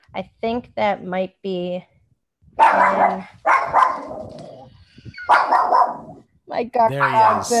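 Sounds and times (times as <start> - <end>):
speech: 0.1 - 1.9, 2.6 - 7.5
dog barking loudly: 2.6 - 4.3, 5.2 - 6.2, 6.9 - 7.5.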